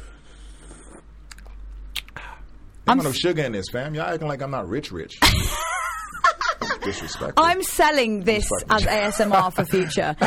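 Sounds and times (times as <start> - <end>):
slurping sips of hot tea: 0.2 - 1.5
speech: 2.9 - 5.7, 6.8 - 10.2.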